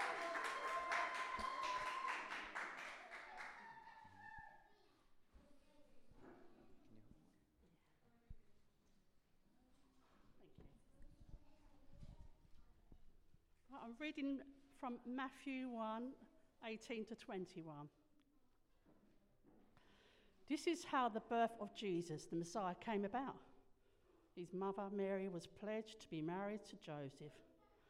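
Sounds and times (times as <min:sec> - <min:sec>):
audience applause for a woman reader: 0:00.0 - 0:04.4
speech: 0:13.9 - 0:18.0, 0:20.5 - 0:23.5, 0:24.4 - 0:27.5.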